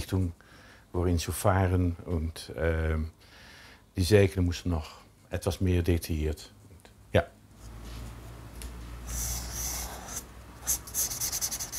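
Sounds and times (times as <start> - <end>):
speech: 0.1 - 3.4, 4.0 - 7.4
pencil scratching on paper drawing an outline sketch: 9.1 - 11.7.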